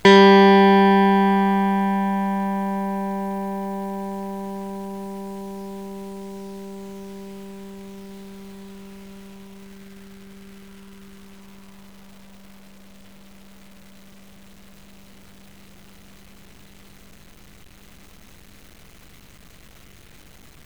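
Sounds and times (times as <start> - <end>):
long notes on the G string: 0.0 - 10.6.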